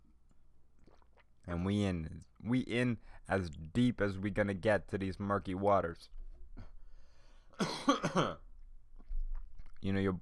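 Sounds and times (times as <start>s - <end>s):
speech: 1.5s - 6.7s, 7.6s - 8.4s, 9.8s - 10.2s
person coughing: 7.6s - 8.5s.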